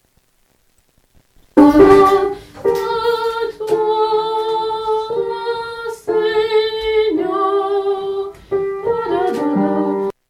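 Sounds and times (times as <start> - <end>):
soprano singing: 1.6 - 10.2.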